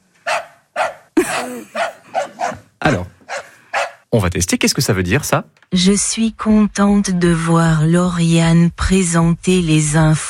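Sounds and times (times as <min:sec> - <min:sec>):
dog yapping: 0:00.2 - 0:04.1
speech: 0:01.4 - 0:01.8, 0:02.9 - 0:03.1, 0:04.1 - 0:10.2.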